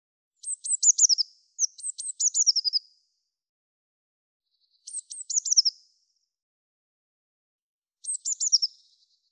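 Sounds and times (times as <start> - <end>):
Eurasian blue tit calling with high sibilant phrases: 0.4 - 2.8, 4.9 - 5.8, 8.0 - 8.7.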